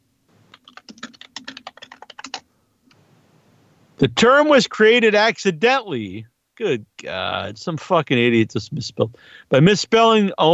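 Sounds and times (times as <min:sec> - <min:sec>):
faint room hum: 0:00.0 - 0:10.5
typing on a computer keyboard: 0:00.5 - 0:02.4
speech: 0:04.0 - 0:10.5.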